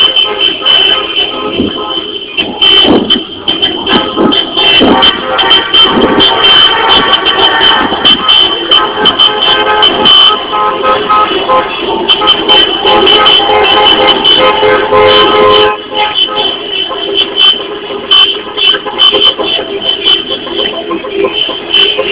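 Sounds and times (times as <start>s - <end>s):
car horns honking in a convoy: 0.0s - 22.1s
long convoy of cars driving along a Copenhagen street: 0.0s - 22.1s.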